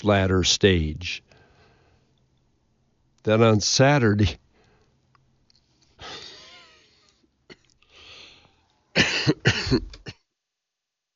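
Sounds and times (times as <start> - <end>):
speech: 0.0 - 1.3, 3.2 - 4.4, 9.0 - 10.0
harsh coughs: 9.0 - 10.2.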